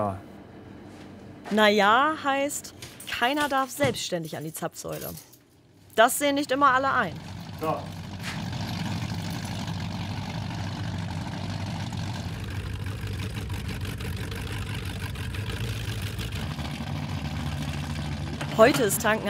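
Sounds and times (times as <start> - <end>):
speech: 0.0 - 0.3, 1.5 - 5.3, 6.0 - 8.0, 18.6 - 19.2
powerboat engine idling at the Stettiner Haff: 6.6 - 19.2.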